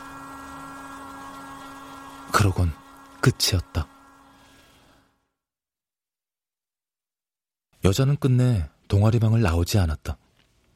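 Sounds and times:
hair dryer drying hair in an art club room: 0.0s - 5.3s
speech: 2.3s - 3.9s, 7.8s - 10.2s.

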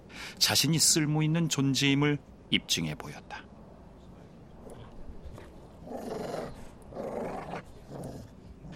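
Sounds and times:
speech: 0.3s - 3.5s
dog growling: 5.8s - 8.7s.

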